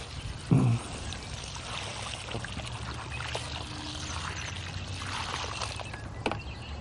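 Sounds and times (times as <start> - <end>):
water poured onto the ground to water it: 0.0 - 6.1.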